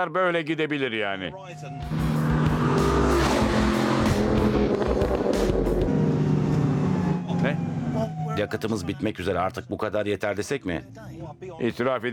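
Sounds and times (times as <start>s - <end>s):
speech: 0.0s - 3.2s, 7.5s - 12.1s
car engine roaring while accelerating during a race: 1.5s - 8.7s.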